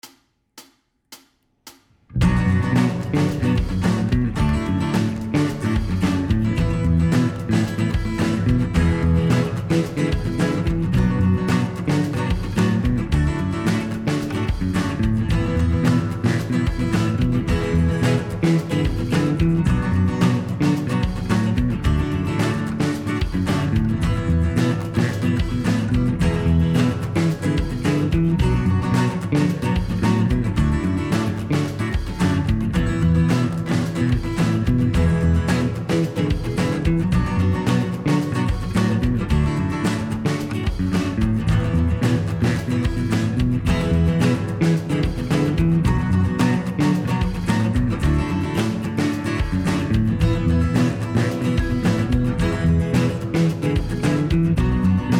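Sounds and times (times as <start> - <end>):
backing track in B Dorian: 2.2 - 55.1.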